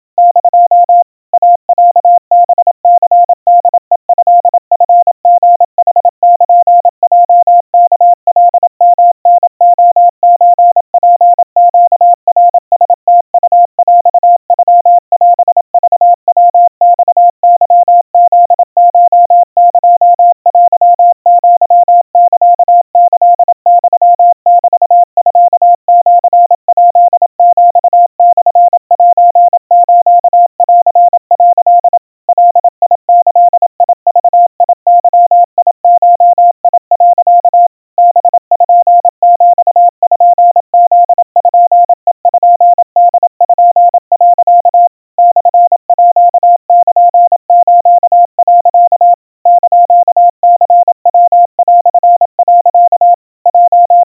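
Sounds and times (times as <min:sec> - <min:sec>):
Morse code tones at 700 Hz and 90 cpm: 0:00.0 - 0:54.0.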